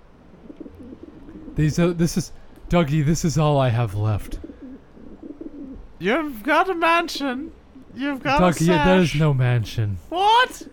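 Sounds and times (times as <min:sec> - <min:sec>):
pigeons cooing: 0:00.0 - 0:02.7, 0:03.8 - 0:06.4, 0:07.4 - 0:08.9
low hum: 0:00.0 - 0:10.7
speech: 0:01.6 - 0:04.4, 0:06.0 - 0:10.7.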